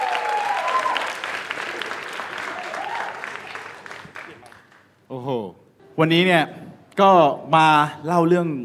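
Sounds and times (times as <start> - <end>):
faint cheering: 0.0 - 3.7
room full of people applauding: 0.0 - 4.9
speech: 6.0 - 8.6.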